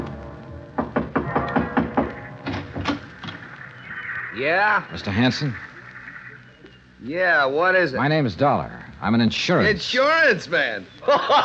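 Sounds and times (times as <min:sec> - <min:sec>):
firm raps on a wooden door: 0:00.8 - 0:03.0
speech: 0:04.4 - 0:05.7, 0:07.0 - 0:11.4
laughter: 0:11.0 - 0:11.4.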